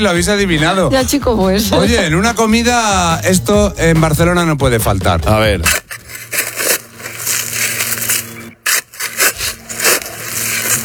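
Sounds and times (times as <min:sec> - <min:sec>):
speech: 0:00.0 - 0:05.8
shovel digging: 0:05.6 - 0:10.8.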